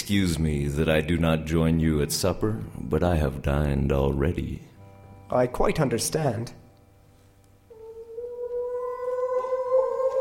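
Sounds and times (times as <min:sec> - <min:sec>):
speech: 0:00.1 - 0:04.7, 0:05.3 - 0:06.6
wolves howling: 0:07.7 - 0:10.2.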